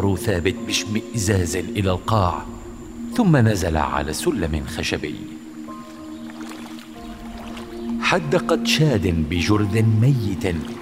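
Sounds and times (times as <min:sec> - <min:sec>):
speech: 0:00.0 - 0:02.6, 0:03.2 - 0:05.4, 0:08.1 - 0:10.7
low hum: 0:01.4 - 0:08.7
feet sloshing and splashing through shallow sewer water: 0:05.5 - 0:08.6.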